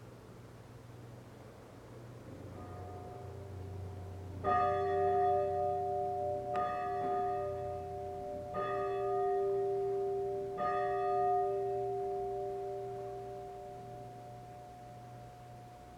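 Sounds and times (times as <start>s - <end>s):
low steady hum: 0.0s - 15.9s
church bell tolling: 2.5s - 15.9s.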